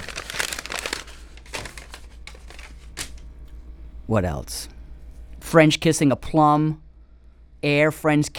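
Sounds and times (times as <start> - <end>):
crisp paper being crinkled and crumpled: 0.0 - 3.3
low steady hum: 0.0 - 8.3
speech: 4.1 - 4.8, 5.5 - 6.8, 7.6 - 8.3.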